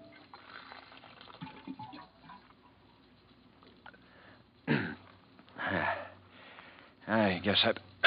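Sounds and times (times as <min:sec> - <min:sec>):
water gushing from an office water cooler: 0:00.0 - 0:02.8
speech: 0:07.1 - 0:07.9.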